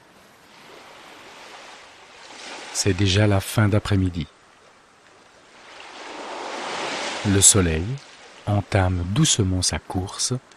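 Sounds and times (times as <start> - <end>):
waves washing onto a beach: 0.0 - 3.1, 5.2 - 8.7
speech: 2.8 - 4.4, 7.2 - 10.5.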